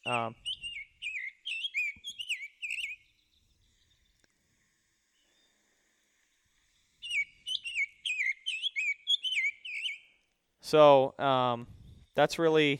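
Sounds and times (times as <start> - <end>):
bird calls played back from a bird identification app: 0.0 - 4.1, 7.0 - 10.2
speech: 0.1 - 0.5, 10.7 - 12.7.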